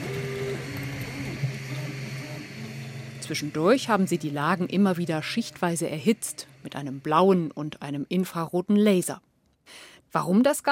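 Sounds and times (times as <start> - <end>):
3D food printer stepper motors whirring and buzzing: 0.0 - 8.2
constant mechanical hum of a 3D printer: 0.0 - 9.4
speech: 3.3 - 10.7.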